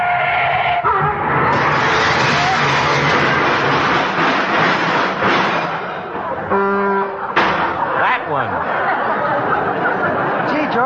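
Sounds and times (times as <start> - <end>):
car tires screeching in a skid: 0.0 - 8.1
car crash: 0.9 - 6.6, 7.2 - 8.1
laughter: 6.1 - 10.8.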